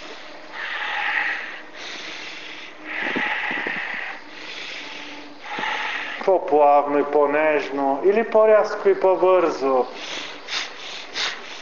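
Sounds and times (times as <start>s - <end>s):
forceful rhythmic bhastrika-style breathing: 0.0s - 7.1s, 9.4s - 11.5s
speech: 6.3s - 10.2s.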